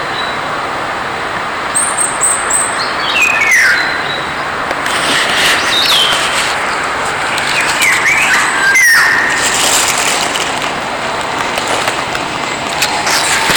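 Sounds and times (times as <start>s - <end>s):
steady vehicle rumble: 0.6s - 13.5s
Eurasian golden oriole song: 1.8s - 4.4s, 7.3s - 10.0s
high thin chirps from another bird: 1.8s - 10.3s.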